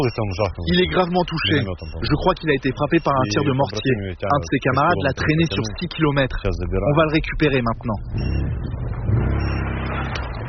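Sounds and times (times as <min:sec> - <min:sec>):
speech: 0:00.0 - 0:09.6
quad bike engine arriving during a battlefield evacuation: 0:08.0 - 0:10.4.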